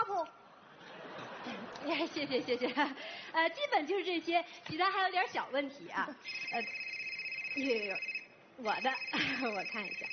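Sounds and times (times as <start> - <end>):
speech: 1.9 - 6.9, 7.6 - 10.1
telephone ringing with high electronic ring tone: 6.2 - 10.1.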